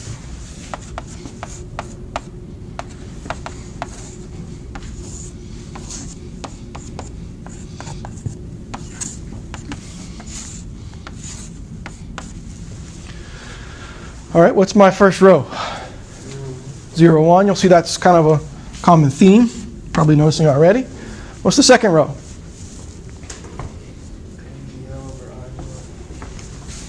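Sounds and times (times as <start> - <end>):
handwriting equations in matrix form: 0.6 - 12.4
speech: 14.4 - 15.6, 17.0 - 22.2.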